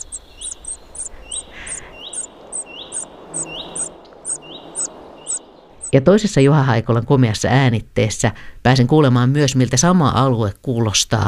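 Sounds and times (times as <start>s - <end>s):
cuckoo chick begging calls in a common redstart's nest: 0.0s - 6.0s
soft hissing background: 0.0s - 11.2s
speech: 5.9s - 11.2s.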